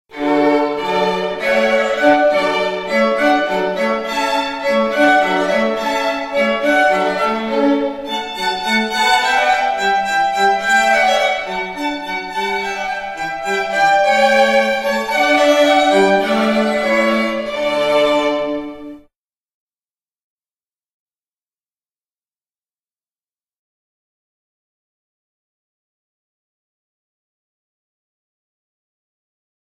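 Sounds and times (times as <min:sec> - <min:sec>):
classical string quartet playing a hornpipe: 0:00.1 - 0:19.1.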